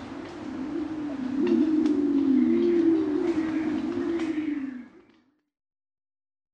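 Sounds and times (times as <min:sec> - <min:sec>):
pied imperial pigeon giving a long low wavering coo: 0:00.0 - 0:05.1.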